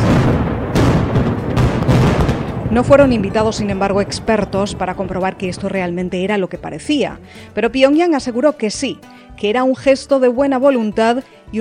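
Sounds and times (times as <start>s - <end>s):
loud sustained rumble of debris and echo: 0.0s - 6.3s
heavy explosions demolishing nuclear test site tunnels: 0.0s - 7.6s
speech: 2.8s - 11.6s.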